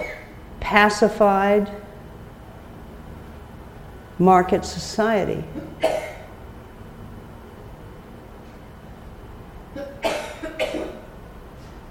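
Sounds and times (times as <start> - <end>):
quiet room noise: 0.0 - 11.9
speech: 0.7 - 1.9, 4.2 - 6.0
person coughing: 5.5 - 6.3, 9.8 - 11.1.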